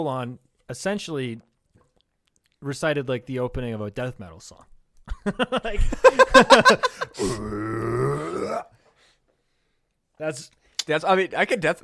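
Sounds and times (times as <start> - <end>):
speech: 0.0 - 1.5, 2.6 - 8.8, 10.2 - 11.8
laughter: 5.1 - 7.2
loud deep burp: 7.2 - 8.8.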